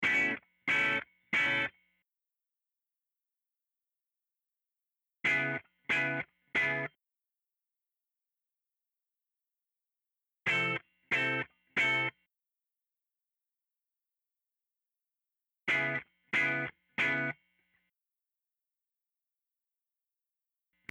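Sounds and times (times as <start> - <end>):
guitar: 0.0 - 2.0, 5.2 - 7.0, 10.4 - 12.2, 15.7 - 17.8.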